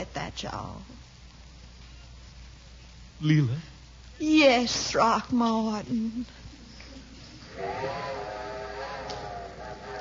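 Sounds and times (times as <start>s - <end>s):
soft hiss: 0.0s - 9.9s
speech: 0.4s - 1.0s, 3.2s - 6.4s
steam train whistle: 7.5s - 9.9s.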